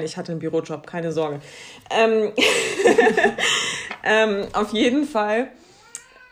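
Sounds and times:
speech: 0:00.0 - 0:05.6
laughter: 0:02.4 - 0:03.8
cat giving a short high meow: 0:05.8 - 0:06.3.

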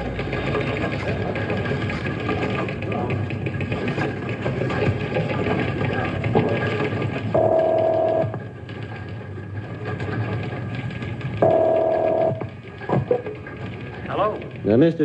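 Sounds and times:
low hum: 0:00.0 - 0:15.0
telephone dialing clicks: 0:07.4 - 0:08.4, 0:11.4 - 0:12.5
speech: 0:14.7 - 0:15.0.

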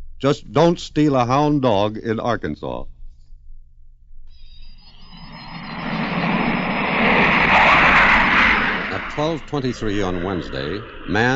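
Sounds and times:
speech: 0:00.2 - 0:02.9, 0:09.2 - 0:11.3
twin-jet British Canberra bomber roaring overhead leaving the Irish coast: 0:04.6 - 0:11.3.

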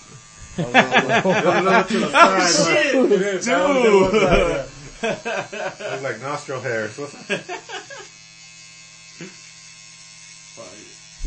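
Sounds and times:
electric shaver buzzing while shaving a man's mustache: 0:00.0 - 0:11.2
laughter: 0:00.6 - 0:06.3, 0:07.1 - 0:08.1
speech: 0:00.6 - 0:07.8, 0:09.2 - 0:09.4.

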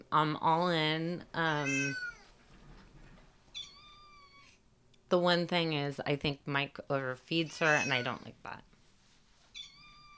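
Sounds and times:
speech: 0:00.1 - 0:02.1, 0:05.1 - 0:08.7
female cat meowing: 0:01.5 - 0:02.3, 0:03.5 - 0:04.6, 0:07.5 - 0:08.1, 0:09.5 - 0:10.1.

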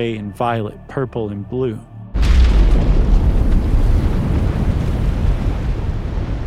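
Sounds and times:
speech: 0:00.0 - 0:01.9
atomic bomb explosion with deep rolling roar: 0:02.2 - 0:06.4.

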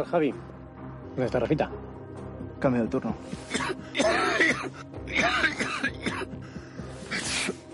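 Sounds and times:
speech: 0:00.0 - 0:00.5, 0:01.2 - 0:01.9, 0:02.6 - 0:06.0
man coughing: 0:03.5 - 0:06.4.

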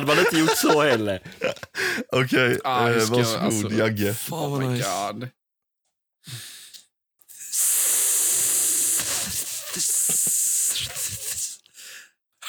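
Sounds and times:
laughter: 0:00.0 - 0:04.2
speech: 0:00.0 - 0:05.4, 0:06.2 - 0:06.5
voice imitating a hissing snake: 0:06.3 - 0:11.7.

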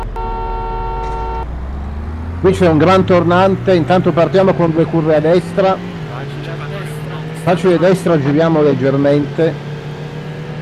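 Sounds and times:
car horn blast in a racing video game: 0:00.0 - 0:01.5
continuous low engine rumble in a racing video game: 0:00.0 - 0:10.6
speech: 0:02.4 - 0:06.0, 0:07.4 - 0:09.7.

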